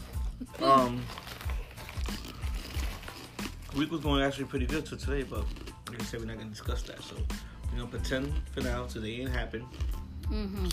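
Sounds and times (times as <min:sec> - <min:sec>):
snack wrapper crinkling: 0:00.0 - 0:04.5
people munching crunchy snacks: 0:00.0 - 0:10.7
speech: 0:03.8 - 0:10.7.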